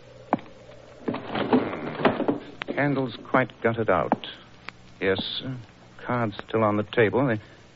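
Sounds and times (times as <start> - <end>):
window in a card room being pulled shut: 1.1 - 2.9
speech: 2.8 - 4.4, 5.0 - 7.6.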